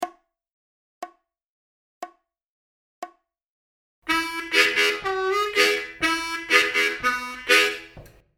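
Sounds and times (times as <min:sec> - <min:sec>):
country style vamping harmonica licks: 0:04.1 - 0:08.1.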